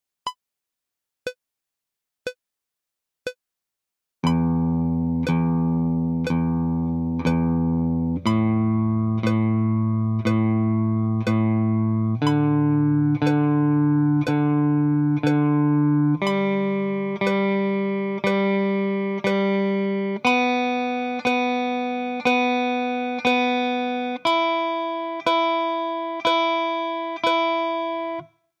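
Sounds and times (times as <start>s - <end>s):
picking practice: 4.2s - 28.3s.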